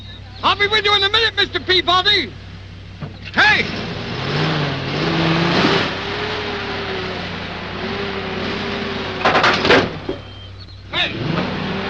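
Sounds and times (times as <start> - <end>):
speech: 0.4 - 2.4, 3.4 - 3.8
car engine idling and revving while maneuvering to unpark: 2.4 - 11.8
sharp clunks and bumps: 9.2 - 10.3.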